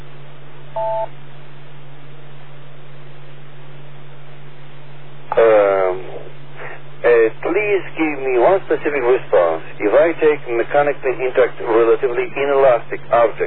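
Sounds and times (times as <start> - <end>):
electrical hum and hiss: 0.0 - 13.4
telephone keypad tone: 0.8 - 1.1
speech: 0.8 - 1.3, 7.6 - 13.4.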